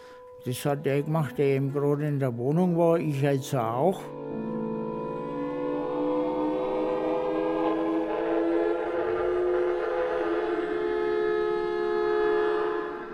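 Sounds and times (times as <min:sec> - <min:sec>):
speech: 0:00.4 - 0:04.3
air raid siren wailing over the rooftops of Nuremberg: 0:04.0 - 0:13.1.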